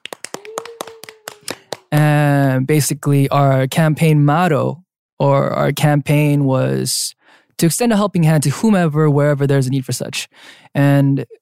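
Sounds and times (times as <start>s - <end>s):
sharp hand claps: 0.0s - 2.1s
speech: 1.9s - 11.3s.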